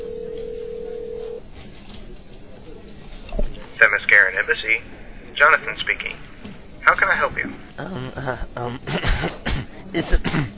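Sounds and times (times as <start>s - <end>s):
electronic telephone ring tone on a phone line: 0.0s - 1.4s
speech: 3.8s - 10.5s.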